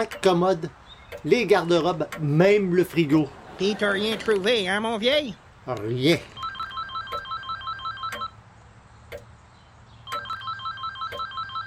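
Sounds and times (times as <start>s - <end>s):
speech: 0.0s - 6.4s
telephone ringing with an electronic trilling ringtone: 6.4s - 8.4s, 10.1s - 11.6s.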